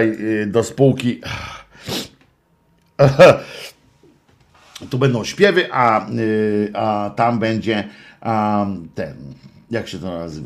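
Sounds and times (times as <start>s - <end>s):
speech: 0.0s - 2.1s, 3.0s - 3.7s, 4.8s - 10.4s
sharp intake of breath: 1.2s - 2.2s, 7.9s - 8.2s
person sneezing loudly: 1.8s - 2.2s.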